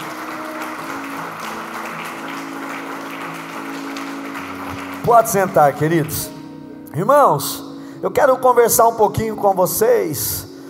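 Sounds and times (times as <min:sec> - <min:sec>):
audience applauding: 0:00.0 - 0:06.3
speech: 0:05.0 - 0:06.3, 0:06.9 - 0:10.5.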